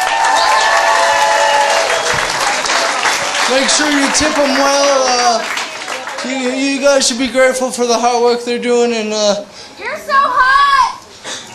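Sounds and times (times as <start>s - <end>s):
audience clapping: 0.0s - 7.1s
speech: 3.5s - 5.6s, 6.2s - 10.5s.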